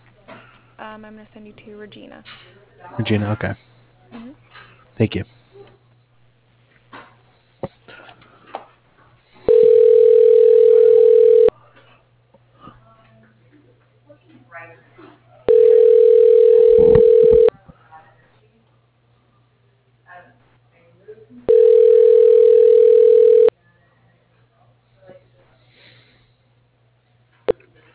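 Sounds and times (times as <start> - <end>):
low constant hum: 0.0 - 27.9
speech: 1.0 - 5.4
ringback tone on a phone line while a call is transferred: 9.5 - 11.5, 15.5 - 17.5.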